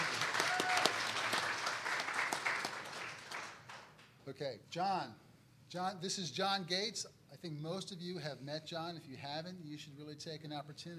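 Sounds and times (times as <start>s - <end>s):
church audience applause: 0.0s - 4.0s
speech: 4.4s - 10.9s.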